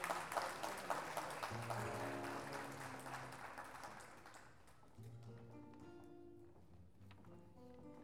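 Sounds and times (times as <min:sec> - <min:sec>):
crowd clapping after a musical performance: 0:00.0 - 0:05.9.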